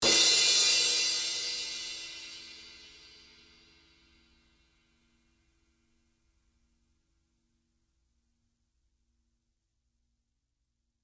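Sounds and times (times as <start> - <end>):
crash cymbal of a live drum kit: 0.0 - 4.6.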